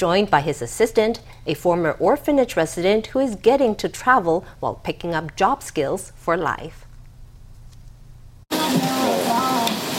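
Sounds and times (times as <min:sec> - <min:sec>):
speech: 0:00.0 - 0:06.8
thick burger patty sizzling on a hot grill: 0:08.5 - 0:09.9.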